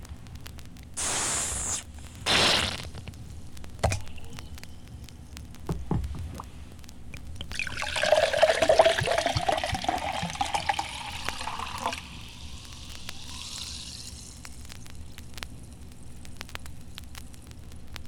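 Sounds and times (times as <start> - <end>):
pop bottle opening: 1.0 - 2.9, 3.8 - 4.5, 7.5 - 14.3
pop pouring from a bottle: 7.4 - 15.2.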